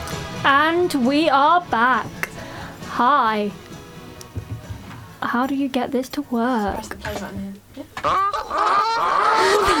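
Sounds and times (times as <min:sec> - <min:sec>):
speech: 0:00.4 - 0:02.2, 0:03.0 - 0:03.6, 0:05.2 - 0:09.7
goose squawking and honking: 0:08.0 - 0:09.7.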